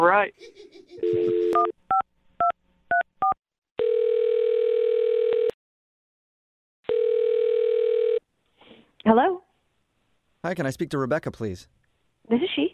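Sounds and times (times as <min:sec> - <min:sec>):
speech: 0:00.0 - 0:01.8, 0:10.4 - 0:12.7
telephone dial tone: 0:01.0 - 0:01.7, 0:03.8 - 0:05.6, 0:06.9 - 0:08.2
long steady telephone ringing tones: 0:01.0 - 0:02.0, 0:03.2 - 0:05.6, 0:06.9 - 0:08.2.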